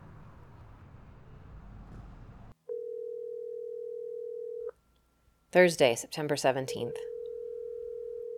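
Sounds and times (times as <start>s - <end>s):
road and engine rumble: 0.0s - 2.6s
telephone dial tone: 2.7s - 4.7s, 6.9s - 8.3s
speech: 5.5s - 7.1s.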